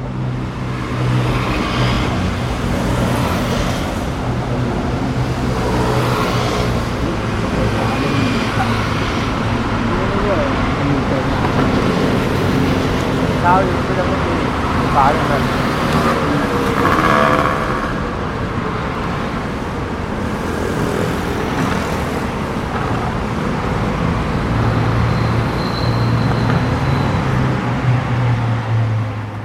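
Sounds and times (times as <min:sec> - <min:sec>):
bus engines rumbling: 0:00.0 - 0:29.4
busy street-corner traffic: 0:00.0 - 0:29.4
indistinct voices murmuring: 0:05.7 - 0:18.8.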